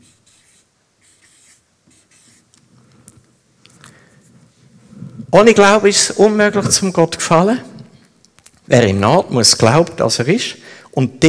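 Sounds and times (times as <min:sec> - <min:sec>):
pen scratching while writing a word: 0:00.0 - 0:02.4
speech: 0:05.3 - 0:07.7, 0:08.7 - 0:11.2.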